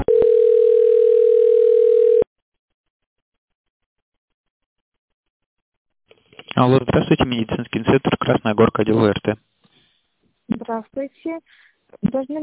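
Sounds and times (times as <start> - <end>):
loud steady telephone line tone during a call transfer: 0.1 - 2.3
speech: 6.6 - 9.5, 10.5 - 12.4.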